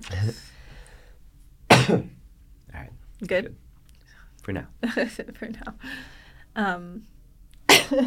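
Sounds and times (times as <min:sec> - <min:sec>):
speech: 0:00.0 - 0:00.6, 0:01.9 - 0:02.1, 0:03.2 - 0:03.6, 0:04.5 - 0:07.1, 0:07.9 - 0:08.0
person coughing: 0:01.7 - 0:02.2.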